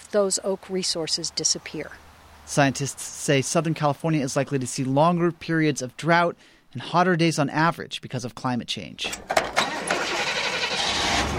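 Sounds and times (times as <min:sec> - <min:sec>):
speech: 0:00.1 - 0:09.4
old rust-covered truck engine running: 0:09.0 - 0:11.3.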